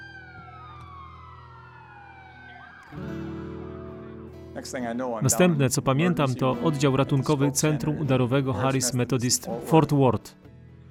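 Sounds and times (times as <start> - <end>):
ambulance siren wailing with long sweeping tones: 0.0 - 4.3
speech: 2.9 - 3.3, 4.6 - 10.5.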